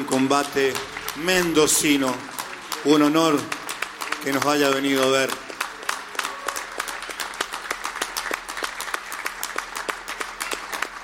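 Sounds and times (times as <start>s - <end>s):
crowd applauding: 0.0s - 11.0s
speech: 0.1s - 3.6s, 4.2s - 5.4s.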